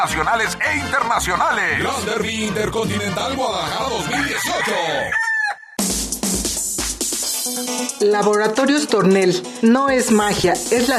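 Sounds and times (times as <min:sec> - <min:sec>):
speech: 0:00.0 - 0:05.2, 0:07.6 - 0:10.9
rooster crowing at a cockfighting tournament in a palenque in Guadalajara: 0:03.9 - 0:05.8.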